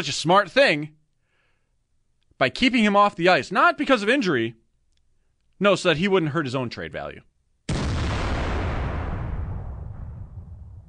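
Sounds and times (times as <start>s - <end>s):
speech: 0.0s - 1.0s, 2.4s - 4.6s, 5.6s - 7.3s
loud cannon blast: 7.7s - 10.8s.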